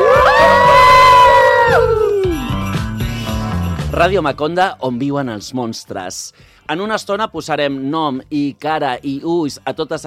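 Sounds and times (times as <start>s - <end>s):
group of librarian radio presenters in Barcelona howling together: 0.0s - 2.4s
speech: 4.0s - 10.0s.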